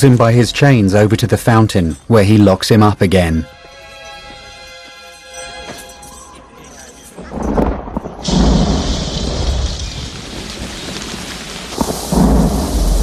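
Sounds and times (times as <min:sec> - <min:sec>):
speech: 0:00.0 - 0:03.6
heavy rain pouring down in a cemetery: 0:07.2 - 0:13.0
deep rolling thunder: 0:07.3 - 0:13.0.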